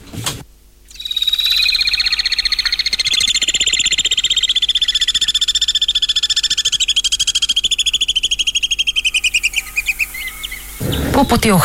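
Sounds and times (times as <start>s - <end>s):
Alpine swifts giving a shrill pulsing trill: 0.9s - 11.6s
speech: 11.2s - 11.6s.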